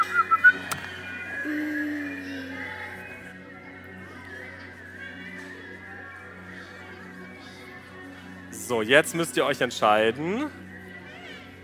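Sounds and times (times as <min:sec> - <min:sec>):
several children whistling with their mouths on a stage: 0:00.0 - 0:03.2
speech: 0:08.7 - 0:10.6.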